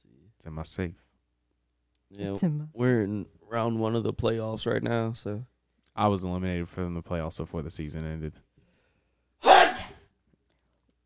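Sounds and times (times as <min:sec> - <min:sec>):
speech: 0:00.4 - 0:01.1, 0:02.1 - 0:08.5
person sneezing: 0:09.4 - 0:10.1.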